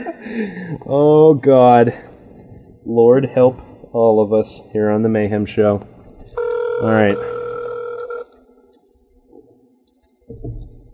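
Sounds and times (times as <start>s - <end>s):
speech: 0.0s - 2.1s, 2.9s - 7.3s, 10.3s - 10.7s
phone ringback tone of an outgoing call: 6.4s - 8.3s.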